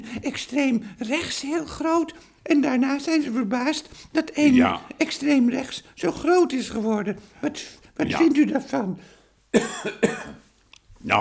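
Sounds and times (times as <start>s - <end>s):
speech: 0.1s - 10.4s
person coughing harshly: 4.5s - 4.8s, 9.6s - 10.4s.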